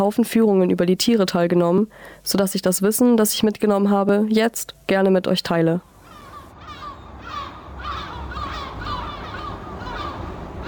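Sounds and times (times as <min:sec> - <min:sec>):
speech: 0:00.0 - 0:05.9
wind on Helgoland island: 0:00.0 - 0:10.6
seabird colony calling on the Lummenfelsen cliff on Helgoland, Germany: 0:06.0 - 0:10.6.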